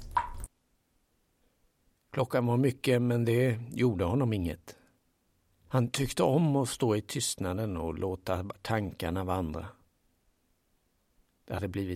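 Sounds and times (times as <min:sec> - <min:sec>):
water drop falling from shower hose: 0:00.0 - 0:00.5
speech: 0:02.2 - 0:04.8, 0:05.7 - 0:09.8, 0:11.5 - 0:11.9.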